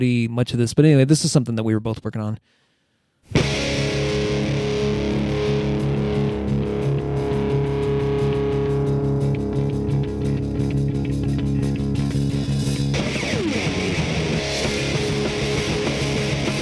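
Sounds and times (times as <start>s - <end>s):
speech: 0.0s - 2.6s
heavily distorted guitar in a home recording: 3.3s - 16.6s.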